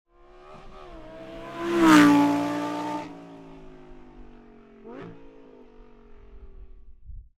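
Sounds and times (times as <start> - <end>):
vehicle passing by: 0.2 - 5.4.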